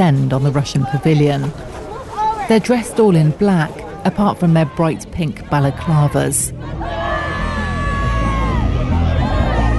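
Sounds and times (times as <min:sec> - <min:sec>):
speech: 0:00.0 - 0:01.7, 0:02.5 - 0:06.9
noisy crowd babble: 0:00.0 - 0:09.7
women shouting in protest: 0:04.4 - 0:09.7.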